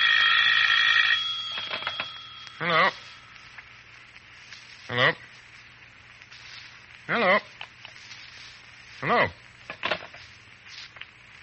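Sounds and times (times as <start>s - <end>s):
telephone bell ringing: 0.0s - 3.4s
speech: 2.6s - 3.0s, 5.0s - 5.2s, 7.1s - 7.5s, 9.0s - 9.4s.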